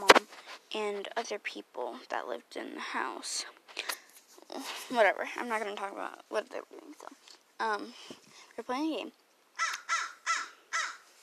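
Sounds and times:
speech: 0.7 - 3.9, 4.5 - 9.2
crow cawing: 9.6 - 11.1.

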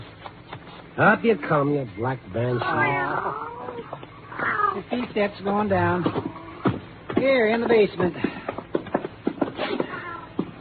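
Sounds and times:
speech: 1.0 - 6.4, 7.2 - 8.3
cat meowing and yowling: 2.5 - 4.8, 9.8 - 10.4.

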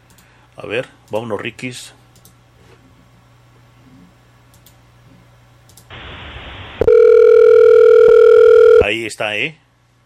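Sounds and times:
speech: 0.6 - 2.0, 8.9 - 9.6
loud steady telephone dial tone: 6.8 - 8.8
soft hiss of a phone line dialed from a studio: 6.8 - 8.9.

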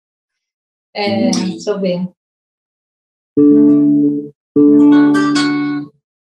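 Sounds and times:
sustained acoustic guitar chords: 1.0 - 1.7, 3.4 - 6.0
speech: 1.0 - 2.2.

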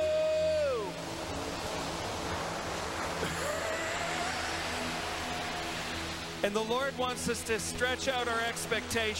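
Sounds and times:
ocean surf roar: 0.0 - 9.1
sliding tonal sweep dropping away: 0.4 - 6.6
speech: 6.4 - 9.1.

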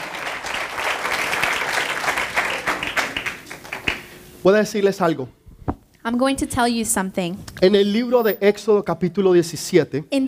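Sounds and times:
audience applauding: 0.0 - 4.2
speech: 4.4 - 5.4, 6.0 - 10.2.

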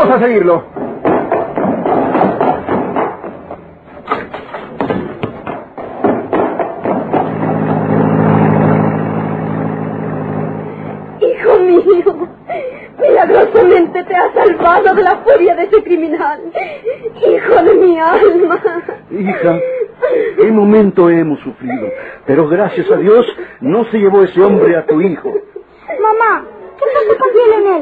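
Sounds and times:
speech: 0.1 - 0.8, 14.7 - 27.8
car engine droning as the car pulls away: 1.0 - 12.9
laughter: 11.2 - 23.5, 24.2 - 26.2, 26.8 - 27.8.

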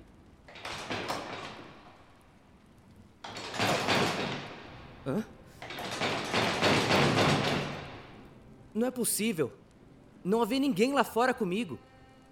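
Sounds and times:
locked door being rattled and pushed: 0.5 - 2.2, 3.2 - 5.0, 5.6 - 8.3
speech: 5.0 - 5.4, 8.8 - 9.6, 10.2 - 11.9.

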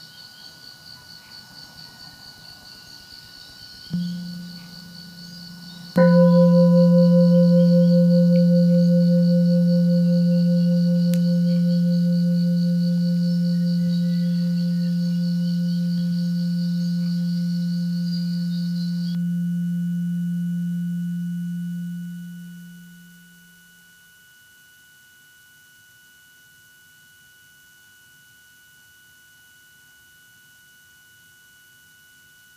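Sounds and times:
deep meditation bell ringing during a guided meditation: 4.0 - 23.9.

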